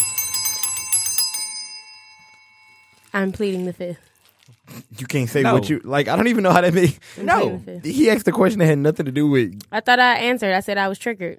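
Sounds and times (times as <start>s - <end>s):
game show bell ringing rapidly with bright metallic strikes: 0.0s - 3.3s
speech: 3.1s - 4.1s, 4.7s - 11.3s.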